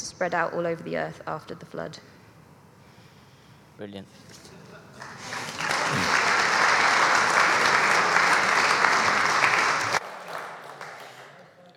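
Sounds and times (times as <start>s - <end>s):
speech: 0.2s - 2.2s, 3.8s - 4.5s
audience applause after a reading: 5.0s - 11.5s.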